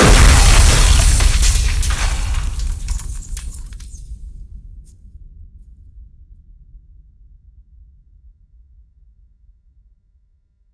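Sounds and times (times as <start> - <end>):
explosion hitting glass: 0.0 - 4.1
explosion: 0.0 - 4.4.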